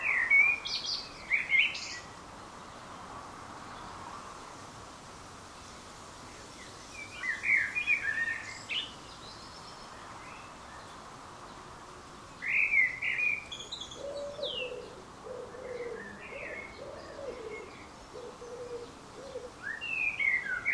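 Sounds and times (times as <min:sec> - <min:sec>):
common blackbird Turdus merula singing fluty phrases: 0:00.0 - 0:02.1, 0:07.0 - 0:10.9, 0:12.4 - 0:20.7
low soft cooing: 0:14.0 - 0:19.6.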